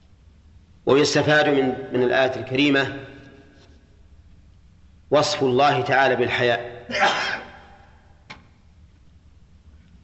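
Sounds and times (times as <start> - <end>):
speech: 0.9 - 3.1, 5.1 - 7.4
person sneezing: 6.9 - 7.8.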